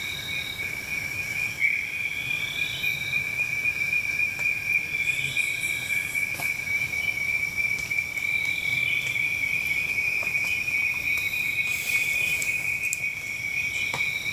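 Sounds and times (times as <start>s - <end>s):
insects calling in a continuous high thin buzzing trill: 0.0s - 14.3s
faint brief chirps and ticks: 2.4s - 14.3s
soft low outdoor hush: 10.4s - 13.8s.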